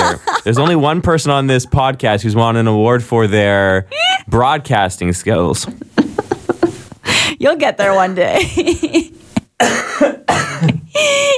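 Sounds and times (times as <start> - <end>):
speech: 0.1 - 6.0, 7.0 - 11.3
dry coughs: 9.6 - 11.0.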